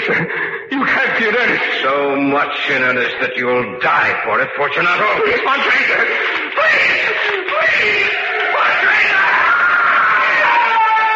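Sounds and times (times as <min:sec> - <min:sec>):
laughter: 0:00.0 - 0:02.9, 0:04.7 - 0:11.1
speech: 0:01.3 - 0:08.2
man screaming: 0:06.6 - 0:11.1.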